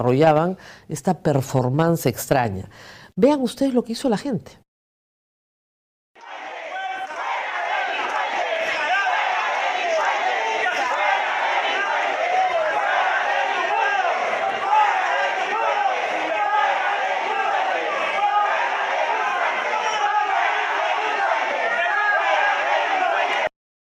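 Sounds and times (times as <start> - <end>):
speech: 0.0 - 4.6
large crowd shouting a protest chant indoors: 6.2 - 23.5.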